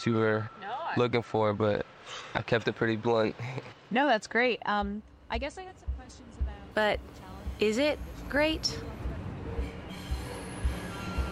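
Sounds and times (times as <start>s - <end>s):
speech: 0.0s - 9.0s
subway train rushing rumble: 5.3s - 11.3s
subway train thin high wheel squeal: 8.7s - 11.3s.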